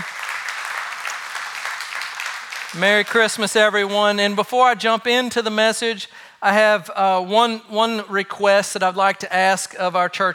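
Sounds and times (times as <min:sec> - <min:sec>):
church audience clapping for guests: 0:00.0 - 0:03.8
speech: 0:02.7 - 0:10.3.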